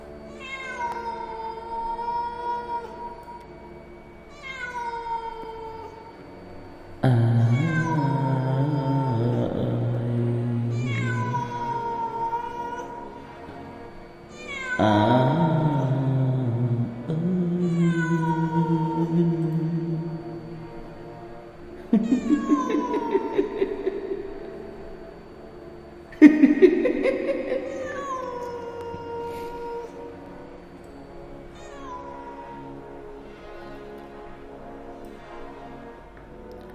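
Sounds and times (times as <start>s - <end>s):
cat wailing mournfully in drawn-out meows: 0.3s - 3.2s, 4.3s - 6.1s, 7.0s - 13.2s, 14.3s - 20.5s, 22.0s - 24.8s, 27.2s - 30.1s, 31.6s - 32.8s
laughter: 21.8s - 25.0s, 26.1s - 29.5s.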